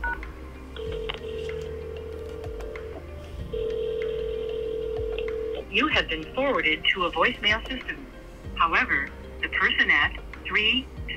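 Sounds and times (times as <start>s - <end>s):
steady phone line hum: 0.0s - 5.7s
loud sustained phone line tone: 0.8s - 5.6s
speech: 5.7s - 10.9s.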